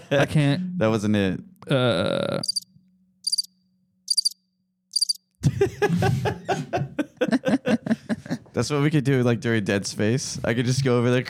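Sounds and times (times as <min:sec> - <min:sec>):
speech: 0:00.1 - 0:02.5, 0:05.5 - 0:06.8, 0:08.6 - 0:11.2
crickets chirping: 0:02.4 - 0:05.2
loud laughter: 0:05.4 - 0:08.5.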